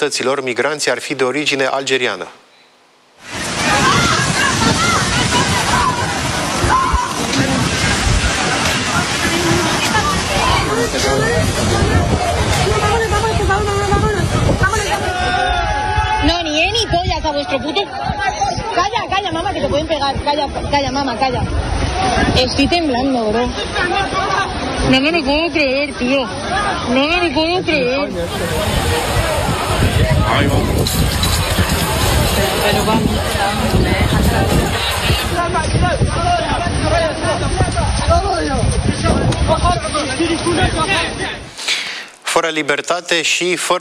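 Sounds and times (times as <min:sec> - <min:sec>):
speech: 0:00.0 - 0:02.4, 0:17.3 - 0:18.4, 0:19.2 - 0:31.7, 0:32.4 - 0:36.4, 0:37.0 - 0:38.9, 0:39.5 - 0:41.4, 0:42.3 - 0:43.7
waves sloshing against the shore and a boat: 0:03.2 - 0:15.3, 0:20.4 - 0:38.0
agitated crowd calling out on a beach at Cartagena in southern Spain: 0:03.3 - 0:13.5, 0:14.2 - 0:18.8, 0:25.9 - 0:38.0.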